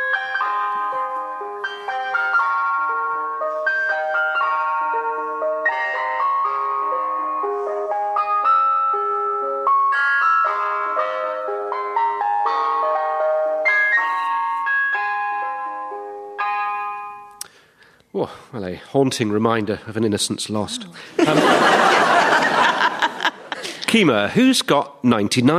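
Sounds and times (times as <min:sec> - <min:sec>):
ice cream van chime playing a melody of bell-like notes: 0:00.0 - 0:17.6
speech: 0:18.2 - 0:21.9, 0:23.9 - 0:25.5
laughter: 0:20.9 - 0:24.1.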